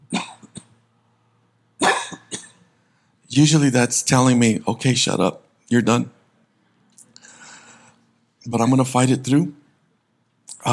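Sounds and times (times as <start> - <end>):
person coughing: 0.1 - 0.8, 1.8 - 2.7
speech: 3.4 - 6.2, 8.4 - 9.6.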